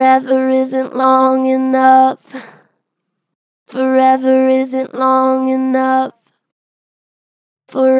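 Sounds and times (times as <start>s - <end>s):
vocals: 0.0s - 2.7s, 3.7s - 6.4s, 7.7s - 7.9s.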